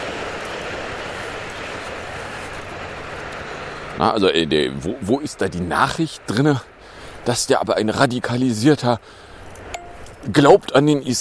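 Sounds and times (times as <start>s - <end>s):
subway train rumbling past: 0.0s - 6.1s
speech: 4.0s - 9.3s, 10.2s - 11.1s.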